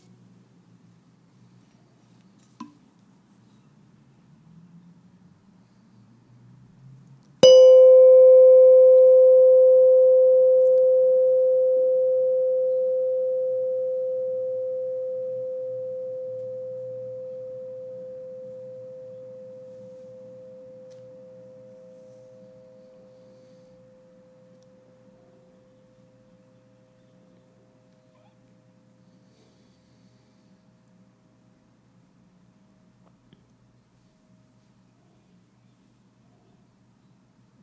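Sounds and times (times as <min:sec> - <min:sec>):
single bell struck and ringing with a clear sustained tone: 0:07.4 - 0:20.4.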